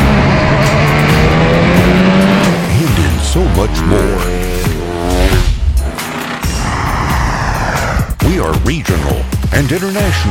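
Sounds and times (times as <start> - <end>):
Formula One race car engine screaming at high revs: 0.0 - 8.1
speech: 3.6 - 4.1, 8.7 - 10.2.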